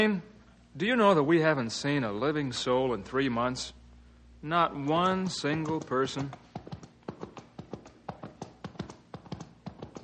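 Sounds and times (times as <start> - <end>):
speech: 0.0 - 3.8, 4.4 - 6.4
hooves of a ridden horse clip-clopping: 5.2 - 10.0.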